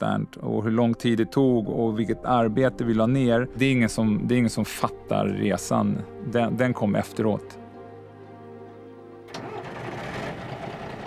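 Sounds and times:
speech: 0:00.0 - 0:07.6
bus engine starting and idling: 0:09.2 - 0:11.0.

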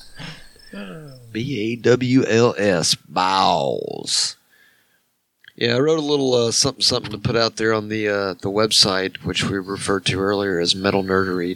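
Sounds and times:
human vocal sound: 0:00.0 - 0:01.5
crickets chirping in a high-pitched trill: 0:00.0 - 0:02.0
speech: 0:00.7 - 0:04.4, 0:05.6 - 0:11.5.

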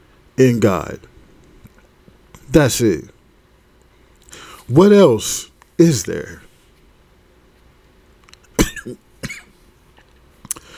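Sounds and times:
speech: 0:00.4 - 0:01.1, 0:02.5 - 0:03.2, 0:04.3 - 0:06.4, 0:08.8 - 0:09.0
person coughing: 0:08.6 - 0:09.6.

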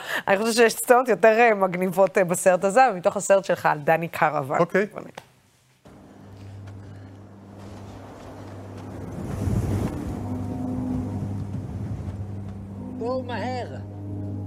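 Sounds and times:
speech: 0:00.2 - 0:05.3, 0:13.0 - 0:13.9
steady hollow low tones from sculpture flute pipes: 0:05.9 - 0:14.4
gusty wind noise buffeting the microphone: 0:07.5 - 0:12.9.

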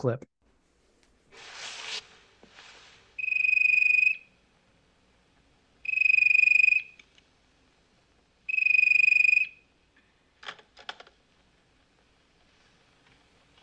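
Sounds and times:
speech: 0:00.0 - 0:00.3
rustling: 0:00.9 - 0:03.2
unusual ringtone on a woman's phone: 0:03.2 - 0:04.4, 0:05.8 - 0:07.0, 0:08.5 - 0:09.6.

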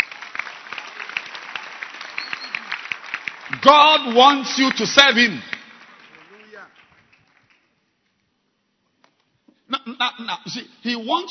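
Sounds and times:
crowd clapping hands: 0:00.0 - 0:08.0
speech: 0:03.6 - 0:05.5, 0:10.5 - 0:11.3.

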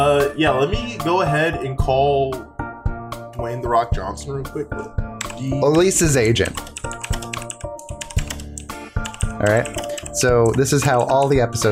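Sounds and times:
speech: 0:00.3 - 0:02.5, 0:03.4 - 0:06.9, 0:09.4 - 0:11.7
typing on a computer keyboard: 0:05.2 - 0:11.4.

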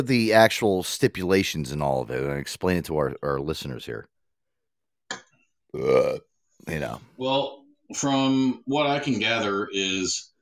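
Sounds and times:
speech: 0:00.0 - 0:04.1, 0:05.7 - 0:10.3
drawn-out throaty belch: 0:05.7 - 0:06.3.

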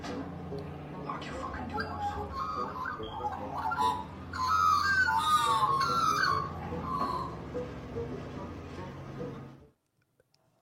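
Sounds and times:
steady low hum: 0:00.0 - 0:10.5
magpies making territorial calls at an owl outside a window: 0:01.0 - 0:07.5.

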